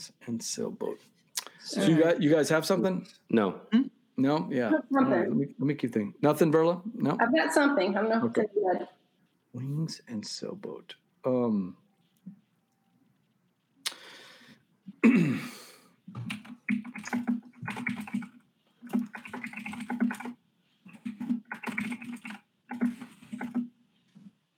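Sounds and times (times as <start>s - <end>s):
speech: 0.0s - 11.8s
rapid typing on a computer keyboard: 16.2s - 23.7s.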